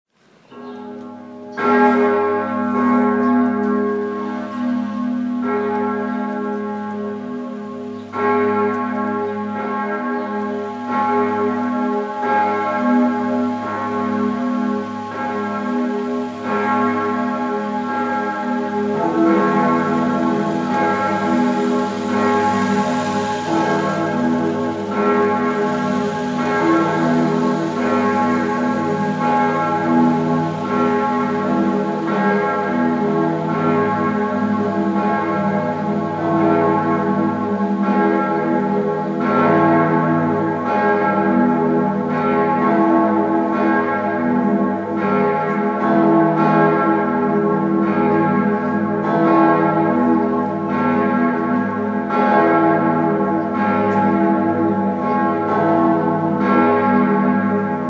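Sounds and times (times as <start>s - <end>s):
cathedral bell ringing for Good Friday in Bern: 0.5s - 57.8s.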